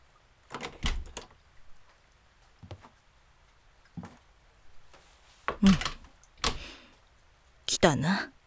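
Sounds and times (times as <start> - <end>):
door opening and closing: 0.5 - 1.4, 5.5 - 6.8
speech: 5.6 - 5.9, 7.8 - 8.4.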